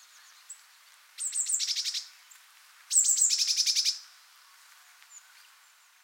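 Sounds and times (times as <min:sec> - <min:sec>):
Eurasian blue tit Cyanistes caeruleus calling: 0:01.2 - 0:02.1, 0:02.9 - 0:04.0.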